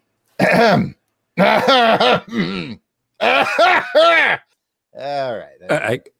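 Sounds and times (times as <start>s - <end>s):
throat clearing: 0.4s - 2.8s
person coughing: 0.4s - 4.4s
speech: 0.5s - 4.4s, 5.0s - 6.1s.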